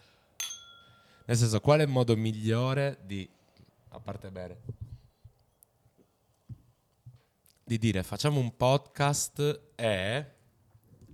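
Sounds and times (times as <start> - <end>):
glasses clinking in a toast: 0.4 - 1.3
speech: 1.3 - 4.8, 7.7 - 10.4.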